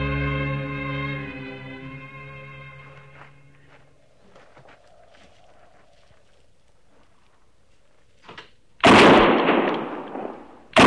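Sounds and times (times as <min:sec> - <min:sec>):
rifle shot fired at an antelope: 0:08.8 - 0:10.8.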